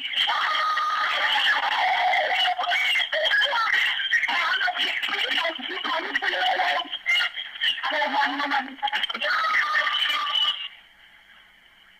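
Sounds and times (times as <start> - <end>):
laughter: 0.1 - 10.7
frantic screaming and yelling on a recorded emergency phone call: 0.2 - 2.9.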